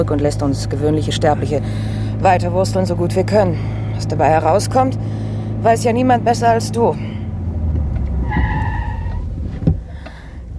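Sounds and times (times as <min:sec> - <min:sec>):
speech: 0:00.0 - 0:07.2
car pulling up and parking on the left side of the road: 0:00.0 - 0:10.5
car door thump: 0:09.5 - 0:09.9.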